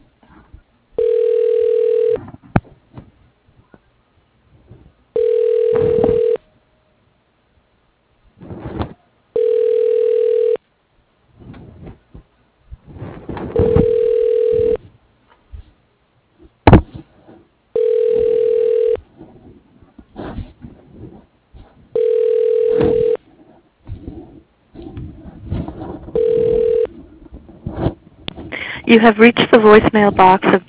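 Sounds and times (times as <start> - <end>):
telephone ringback tone during call transfer to a law office: 1.0 - 2.2, 5.1 - 6.5, 9.4 - 10.6, 13.6 - 14.8, 17.8 - 19.0, 22.0 - 23.2, 26.1 - 26.9
speech: 28.9 - 30.6.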